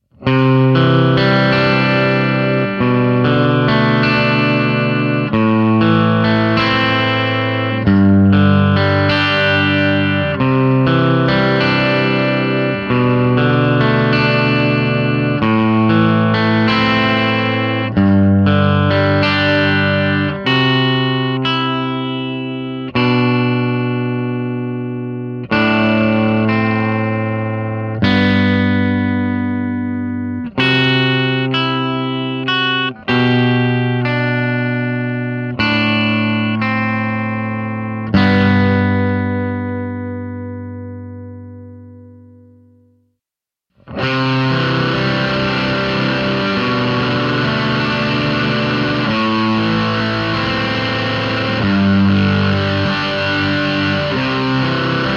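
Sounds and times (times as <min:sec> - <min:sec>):
arp through amp with ProCo RAT2: 0:00.0 - 0:43.0, 0:43.7 - 0:55.1.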